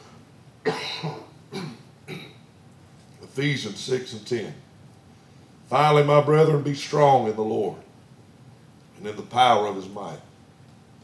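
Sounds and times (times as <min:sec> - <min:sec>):
preacher clearing his throat: 0:00.7 - 0:02.4
preacher coughing: 0:00.7 - 0:02.4
speech: 0:03.4 - 0:04.7, 0:05.7 - 0:07.9, 0:09.0 - 0:10.3.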